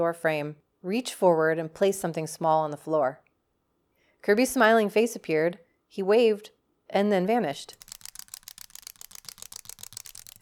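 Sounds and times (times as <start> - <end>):
speech: 0.0 - 3.2, 4.2 - 7.8
small plastic wind-up toy from a gumball machine walking across a floor: 7.7 - 10.4.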